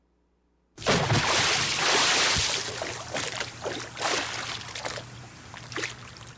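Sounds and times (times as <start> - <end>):
bucket of water being thrown: 0.8 - 6.3.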